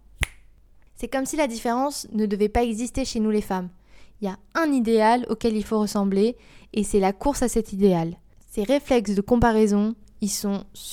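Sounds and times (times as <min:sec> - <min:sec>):
sharp crisp finger snap: 0:00.1 - 0:00.6
speech: 0:01.0 - 0:10.9.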